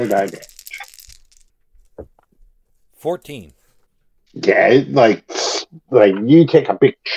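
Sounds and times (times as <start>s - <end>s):
speech: 0.0s - 0.6s, 3.0s - 3.6s, 4.3s - 7.1s
dice rolled on a table in a tabletop role-playing game: 0.0s - 2.3s.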